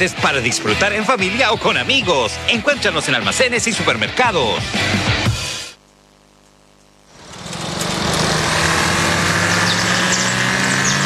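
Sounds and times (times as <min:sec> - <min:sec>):
speech: 0:00.0 - 0:05.4
Audi Q5 2.0 TFSI mild hybrid car engine roar: 0:07.2 - 0:11.0.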